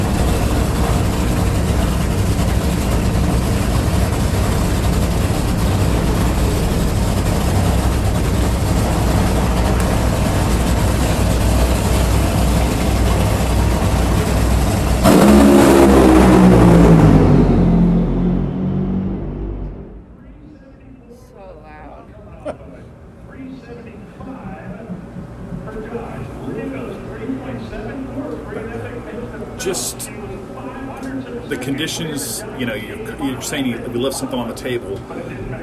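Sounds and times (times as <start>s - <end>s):
drag racing car engines roaring and revving: 0.0s - 20.2s
speech: 32.1s - 35.6s.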